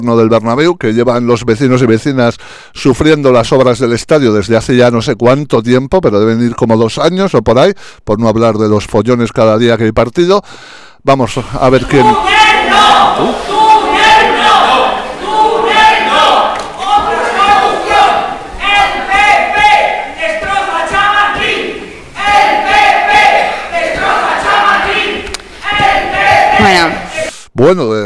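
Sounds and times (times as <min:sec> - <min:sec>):
speech: 0:00.0 - 0:13.6, 0:27.6 - 0:28.0
large crowd of protesters chanting slogans in unison in Madrid: 0:11.8 - 0:27.3.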